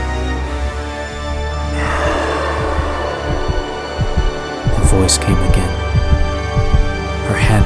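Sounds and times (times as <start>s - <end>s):
low drone: 0.3s - 7.2s
pounding heartbeat: 1.6s - 7.6s
rushing wash of noise: 1.7s - 6.2s
speech: 5.0s - 5.8s, 7.4s - 7.6s.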